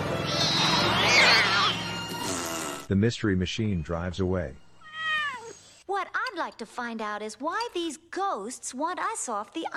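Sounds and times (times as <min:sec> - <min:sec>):
cats yowling while falling off a van roof: 0:00.2 - 0:02.0, 0:04.8 - 0:05.6
speech: 0:02.9 - 0:04.6, 0:06.4 - 0:09.7.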